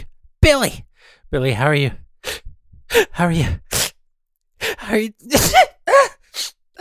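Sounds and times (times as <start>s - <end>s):
speech: 0.5s - 2.0s, 2.9s - 3.6s, 4.9s - 6.2s
person sneezing: 3.7s - 3.9s, 5.3s - 6.7s.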